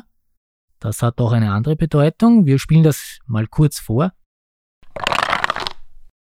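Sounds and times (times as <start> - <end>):
speech: 0.8 - 4.2
dice rolling through a wooden birdhouse dice tower: 4.8 - 5.8.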